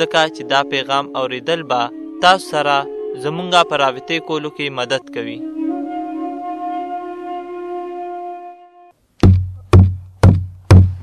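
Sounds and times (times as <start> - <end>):
speech: 0.0 - 5.6
loud heavy knocking on a door: 9.2 - 11.0.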